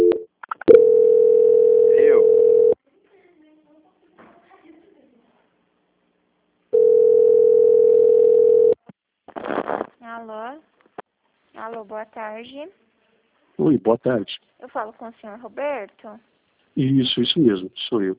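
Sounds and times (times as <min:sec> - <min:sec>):
telephone line tone while a call is being transferred: 0:00.0 - 0:02.8, 0:06.8 - 0:08.8
speech: 0:11.8 - 0:12.9, 0:13.6 - 0:18.1.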